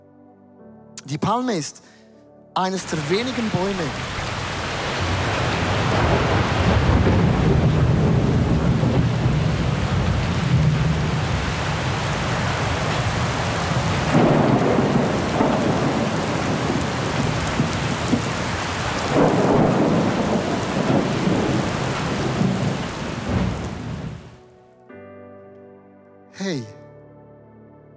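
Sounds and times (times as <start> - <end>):
speech: 1.0 - 2.0, 2.6 - 4.2
steady heavy rain hissing: 2.6 - 24.4
deep rolls of thunder rumbling: 3.6 - 24.3.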